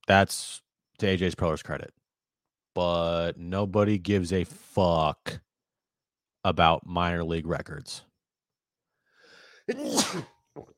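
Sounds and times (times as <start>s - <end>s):
speech: 0.1s - 2.0s, 2.8s - 5.4s, 6.4s - 8.1s, 9.7s - 10.7s
short breathy inhale: 9.0s - 9.7s
person sneezing: 9.7s - 10.4s.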